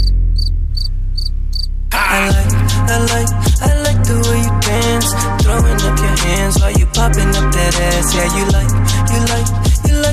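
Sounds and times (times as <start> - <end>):
cricket chirping in high trilling bursts: 0.0 - 1.7
loud dense music track: 2.0 - 10.1
speech: 4.1 - 10.1.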